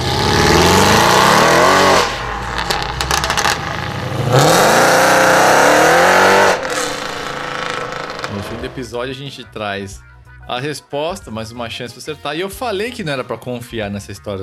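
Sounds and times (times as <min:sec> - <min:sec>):
V8 car engine revving: 0:00.0 - 0:09.0
speech: 0:08.9 - 0:14.4.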